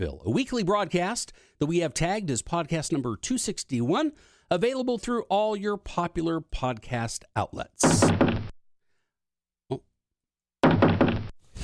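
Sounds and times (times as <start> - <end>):
speech: 0.0 - 8.2, 9.7 - 9.9
single dull knock on a door: 7.8 - 8.5, 10.6 - 11.3.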